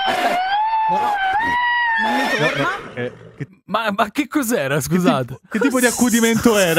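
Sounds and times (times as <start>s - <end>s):
horse neighing: 0.1s - 3.4s
speech: 3.4s - 6.7s.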